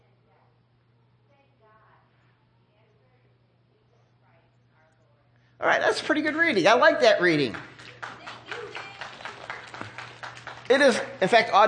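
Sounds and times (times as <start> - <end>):
speech: 5.6 - 7.7, 10.7 - 11.6
small audience clapping: 6.3 - 11.6.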